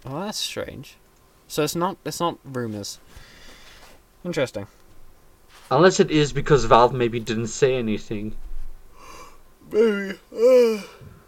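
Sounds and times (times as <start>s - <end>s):
speech: 0.0s - 3.3s, 4.2s - 4.8s, 5.6s - 8.4s, 9.7s - 11.2s
person yawning: 9.0s - 11.1s.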